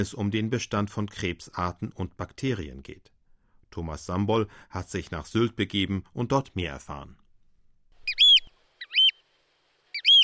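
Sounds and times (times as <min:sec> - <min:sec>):
speech: 0:00.0 - 0:03.1, 0:03.7 - 0:07.2
Eurasian oystercatcher piping calls in the Wadden Sea off Sylt: 0:08.0 - 0:09.2, 0:09.9 - 0:10.2.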